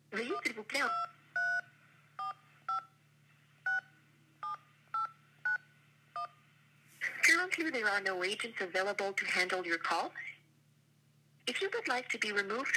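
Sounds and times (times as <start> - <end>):
low steady hum: 0.0 - 12.7
speech: 0.4 - 1.1, 7.6 - 10.3, 11.5 - 12.7
touch-tone keypad beeps entering a phone number: 0.4 - 1.6.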